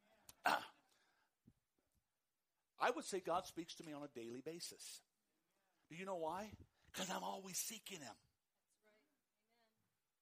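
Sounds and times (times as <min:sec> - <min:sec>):
person clearing throat: 0:00.4 - 0:00.8
speech: 0:02.8 - 0:05.1, 0:05.9 - 0:08.3.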